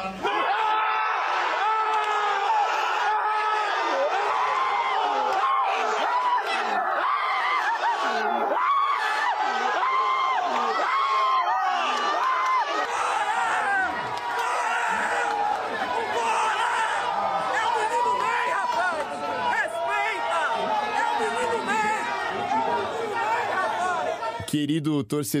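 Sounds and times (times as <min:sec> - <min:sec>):
large football crowd roaring and cheering: 0:00.0 - 0:24.5
laughter: 0:03.2 - 0:24.4
speech: 0:24.6 - 0:25.3.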